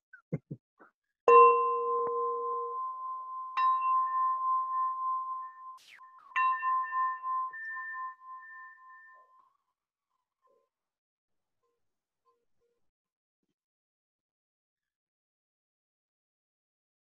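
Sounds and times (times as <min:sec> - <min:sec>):
hand bell ringing: 0:01.3 - 0:09.4.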